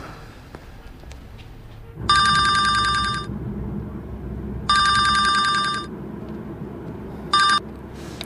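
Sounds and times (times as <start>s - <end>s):
telephone ringing: 2.0s - 3.3s, 4.7s - 5.9s, 7.3s - 7.7s.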